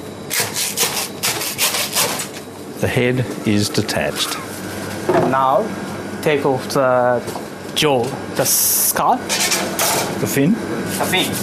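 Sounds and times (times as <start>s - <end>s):
saw cutting through a fish head behind the eye: 0.3s - 2.3s
speech: 2.8s - 4.5s, 5.1s - 11.4s.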